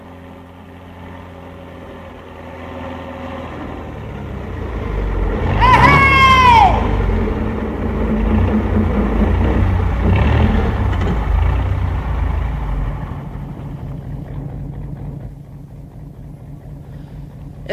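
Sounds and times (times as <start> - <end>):
truck engine rumbling: 0.0 - 17.7
high-pitched squeal: 3.4 - 13.6.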